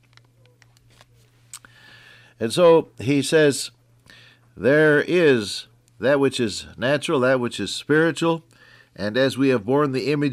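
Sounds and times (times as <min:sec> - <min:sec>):
thin pages of a large Bible turning: 0:00.0 - 0:01.4
steady low electrical hum: 0:00.0 - 0:10.3
speech: 0:02.4 - 0:03.8, 0:04.6 - 0:10.3.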